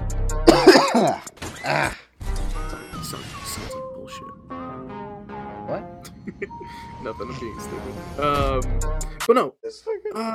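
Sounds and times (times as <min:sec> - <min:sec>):
person coughing and clearing throat: 0:00.5 - 0:02.0
speech: 0:06.4 - 0:10.3.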